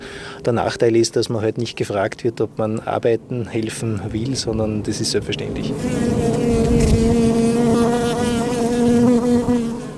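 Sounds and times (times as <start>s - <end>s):
speech: 0.4s - 6.8s
many honeybees buzzing: 5.2s - 9.9s.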